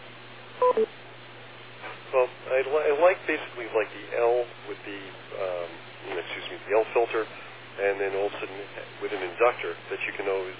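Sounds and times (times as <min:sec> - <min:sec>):
faint steady hum on a phone line: 0:00.6 - 0:00.9
short electronic telephone beeps: 0:00.6 - 0:00.9
speech: 0:00.8 - 0:01.0, 0:02.1 - 0:10.5.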